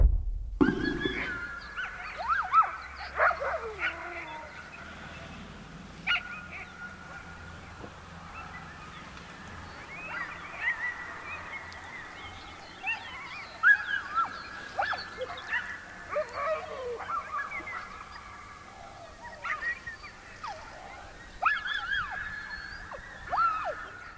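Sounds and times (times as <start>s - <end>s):
dogs in Greenland yipping: 0.6s - 4.6s, 6.1s - 7.3s, 10.0s - 11.4s, 12.8s - 24.1s.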